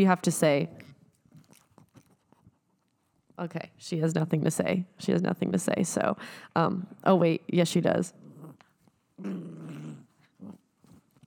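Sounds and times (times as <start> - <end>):
speech: 0.0 - 0.9, 3.4 - 8.2, 9.2 - 10.6
dog growling: 8.1 - 11.0.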